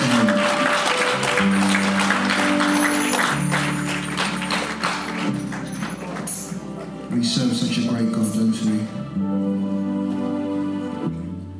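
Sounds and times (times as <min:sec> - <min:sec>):
church audience clapping after a prayer: 0:00.0 - 0:07.2
low keyboard or organ chords: 0:00.0 - 0:11.5.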